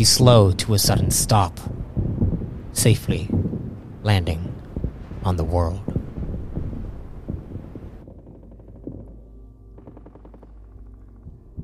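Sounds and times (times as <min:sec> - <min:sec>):
speech: 0:00.0 - 0:01.8, 0:02.8 - 0:03.4, 0:04.0 - 0:04.5, 0:05.2 - 0:05.9
steady low rumble: 0:00.0 - 0:11.6
deep explosion booms: 0:00.8 - 0:11.6
crackly noise burst: 0:01.6 - 0:11.6.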